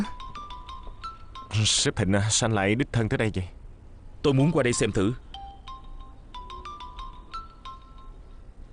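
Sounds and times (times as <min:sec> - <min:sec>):
mobile phone ringing with a chiming electronic melody: 0:00.0 - 0:01.7, 0:04.7 - 0:08.3
low hum: 0:00.0 - 0:08.7
speech: 0:01.6 - 0:03.6, 0:04.2 - 0:05.2.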